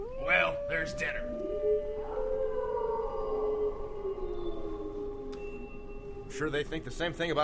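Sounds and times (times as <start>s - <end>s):
pack of wolves howling: 0.0s - 7.4s
speech: 0.8s - 1.4s, 6.4s - 7.4s.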